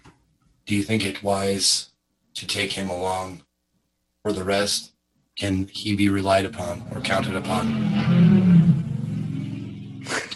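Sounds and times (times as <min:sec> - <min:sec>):
speech: 0:00.7 - 0:03.5, 0:04.2 - 0:08.3
motorcycle passing on a busy street: 0:06.4 - 0:10.2.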